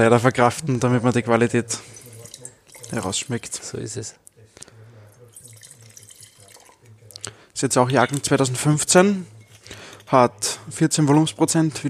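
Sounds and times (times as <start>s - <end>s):
speech: 0.0s - 2.0s, 2.9s - 4.3s, 7.6s - 11.8s
wine poured into a glass to rinse it: 1.2s - 3.9s, 5.0s - 9.7s
glass clink: 1.9s - 3.6s, 5.2s - 6.9s, 7.8s - 10.2s.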